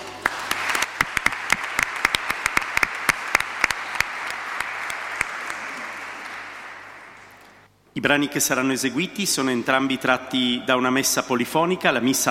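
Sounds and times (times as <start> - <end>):
audience applauding in a reverberant space: 0.0 - 7.7
speech: 8.0 - 12.2.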